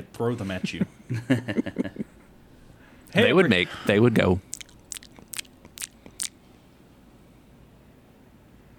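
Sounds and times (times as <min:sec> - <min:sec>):
speech: 0:00.0 - 0:02.0, 0:03.1 - 0:04.5
person making wet crisp mouth pops imitating a video game squid: 0:03.9 - 0:06.4.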